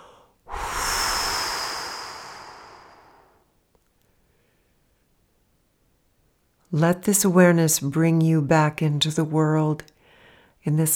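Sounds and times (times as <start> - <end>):
deep breath through the mouth during a guided relaxation: 0.0 - 3.5
speech: 6.7 - 9.9, 10.6 - 10.9.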